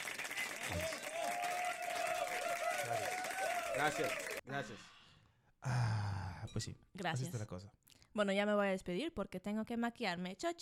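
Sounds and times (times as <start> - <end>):
faint steady patter of clapping: 0.0 - 4.4
speech: 3.8 - 5.0, 5.6 - 10.5.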